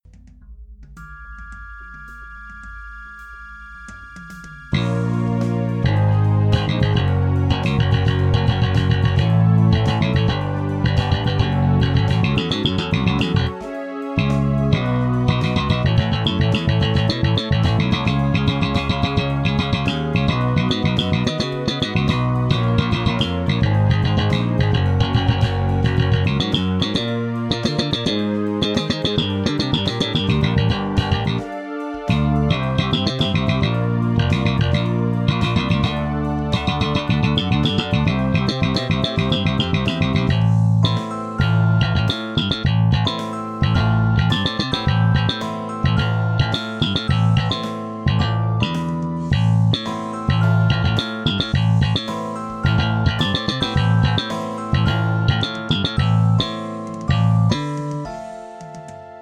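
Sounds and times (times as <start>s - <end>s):
J bass slap bass guitar: 4.7s - 58.3s.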